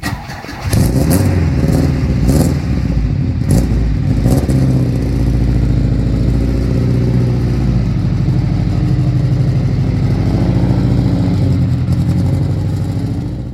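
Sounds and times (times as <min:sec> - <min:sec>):
Ford V4 four-stroke car engine starting up and revving: 0:00.1 - 0:13.5.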